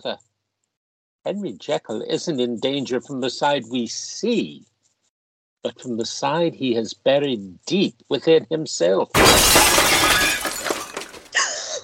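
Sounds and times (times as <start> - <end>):
speech: 0.0 - 0.3, 1.2 - 4.7, 5.6 - 9.8
window glass shattering: 9.2 - 11.4.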